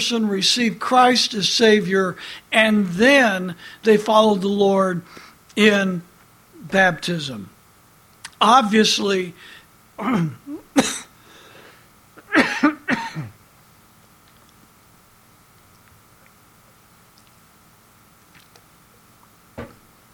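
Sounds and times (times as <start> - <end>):
speech: 0.0 - 7.5, 8.4 - 10.9
harsh coughing after a cough drop went down before melting: 10.0 - 11.2, 12.2 - 13.4.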